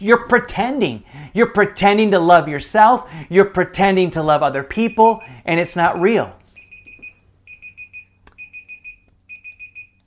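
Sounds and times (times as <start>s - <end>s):
speech: 0.0s - 6.4s
faint hum: 0.0s - 10.0s
digital timer alarm beeping: 4.8s - 10.0s.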